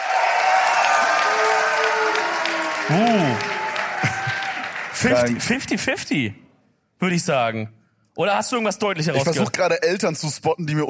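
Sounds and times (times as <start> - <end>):
live audience applause: 0.0 - 5.8
speech: 2.9 - 3.5, 5.0 - 6.4, 7.0 - 10.8.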